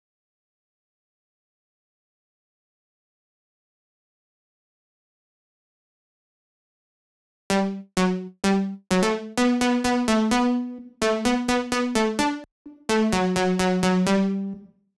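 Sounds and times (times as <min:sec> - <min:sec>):
128 BPM E minor house synth lead loop: 0:07.5 - 0:14.7.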